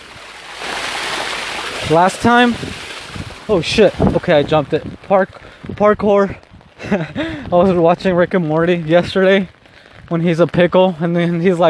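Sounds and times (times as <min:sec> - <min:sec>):
flowing river water rushing: 0:00.0 - 0:04.4
speech: 0:01.9 - 0:02.8, 0:03.5 - 0:11.6.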